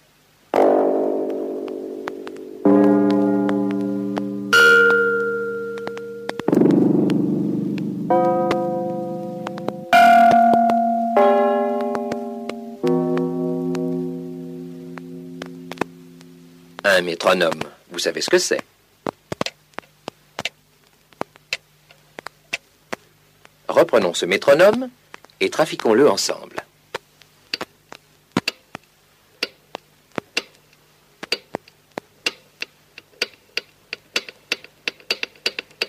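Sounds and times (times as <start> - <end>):
electronic bell-like tones from an amplified thin wire: 0.6 - 16.8
speech: 17.0 - 18.6, 24.0 - 26.6.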